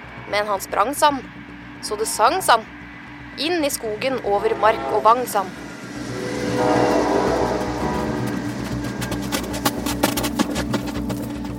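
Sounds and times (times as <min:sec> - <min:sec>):
train rolling along rails through Bohuslän: 0:00.0 - 0:11.5
speech: 0:00.3 - 0:02.8, 0:03.4 - 0:05.7, 0:06.6 - 0:06.8
train wheels clacking over rail joints: 0:07.2 - 0:11.5.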